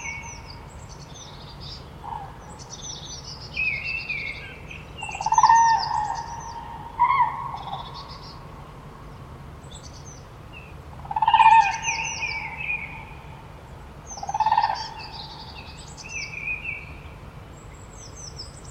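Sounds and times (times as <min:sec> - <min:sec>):
small birds chirping: 0:00.0 - 0:18.6
Common crane trumpeting calls: 0:02.0 - 0:02.6, 0:05.0 - 0:08.5, 0:10.9 - 0:16.9.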